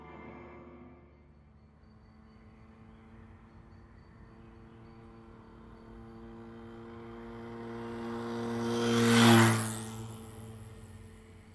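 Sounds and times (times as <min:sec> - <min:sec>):
moped engine buzzing as it passes: 0:05.3 - 0:11.5.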